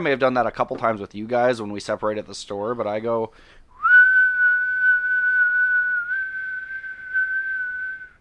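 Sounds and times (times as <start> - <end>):
speech: 0.0 - 3.6
long steady human whistle: 3.7 - 8.1.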